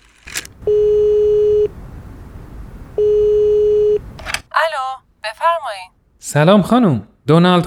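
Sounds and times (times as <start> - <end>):
telephone ringback tone during a call: 0.6 - 1.8, 3.0 - 4.1
speech: 5.8 - 7.6.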